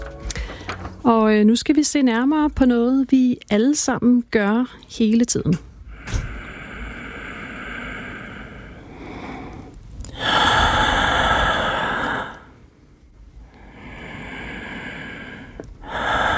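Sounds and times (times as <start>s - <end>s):
human breathing with long airy inhales and exhales: 0.2s - 1.0s, 5.9s - 12.7s, 13.4s - 16.3s
speech: 1.1s - 5.7s.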